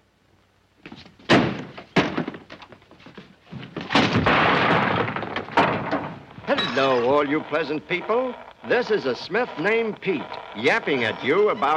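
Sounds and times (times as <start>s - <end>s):
door slamming shut: 1.3s - 2.4s, 3.8s - 6.7s
speech: 6.8s - 11.7s.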